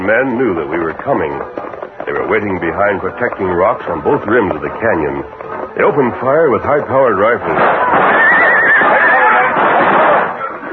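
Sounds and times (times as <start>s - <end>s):
speech: 0.0s - 8.4s
horse neighing: 7.5s - 10.7s.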